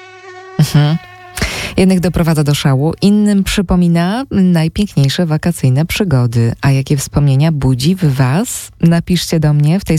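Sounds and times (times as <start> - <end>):
mosquito buzzing: 0.0 - 2.3
speech: 0.7 - 1.0, 1.8 - 9.9.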